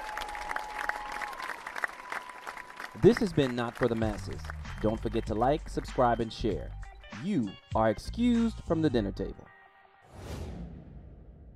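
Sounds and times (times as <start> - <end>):
round of applause: 0.0 - 6.0
speech: 3.0 - 9.5.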